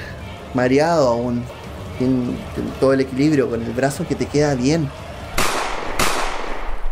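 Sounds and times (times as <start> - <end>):
speech: 0.5 - 5.0
gunshots: 5.4 - 6.9.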